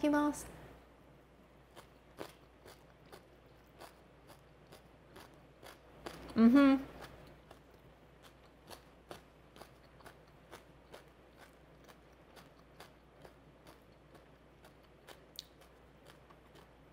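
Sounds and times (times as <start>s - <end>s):
speech: 0.0s - 0.6s, 6.4s - 6.9s
crunchy cabbage salad with sesame oil being bitten and chewed: 1.6s - 16.9s.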